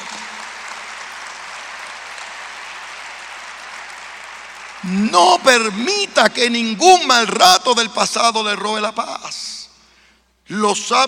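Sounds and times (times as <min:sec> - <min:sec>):
audience applauding: 0:00.0 - 0:05.9
speech: 0:04.8 - 0:09.5, 0:10.5 - 0:11.0.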